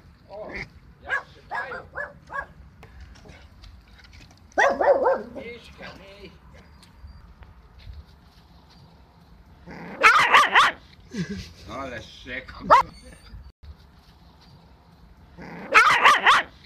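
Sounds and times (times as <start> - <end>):
dog barking: 1.0 - 2.6, 4.6 - 5.4, 10.0 - 10.8, 12.7 - 12.9, 15.6 - 16.5
speech: 11.2 - 13.2.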